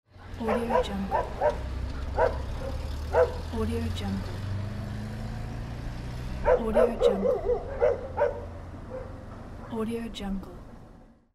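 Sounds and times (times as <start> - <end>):
moving car: 0.1 - 11.2
dogs barking at moving car: 0.4 - 3.5, 6.4 - 9.8.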